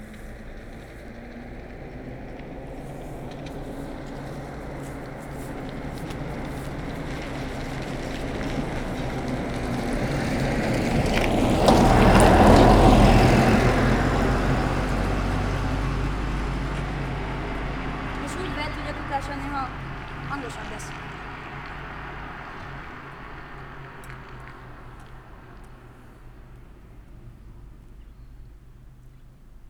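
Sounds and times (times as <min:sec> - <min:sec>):
Niva passenger car: 0:00.0 - 0:29.6.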